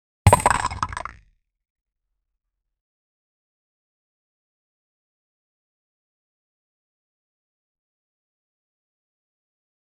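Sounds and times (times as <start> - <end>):
item dropping: 0.3 - 1.2.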